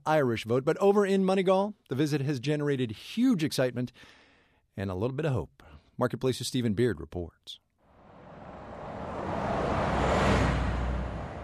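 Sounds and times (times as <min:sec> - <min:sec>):
speech: 0:00.0 - 0:04.2, 0:04.8 - 0:07.6
road traffic roar in town: 0:07.9 - 0:11.4
vehicle passing: 0:07.9 - 0:11.4.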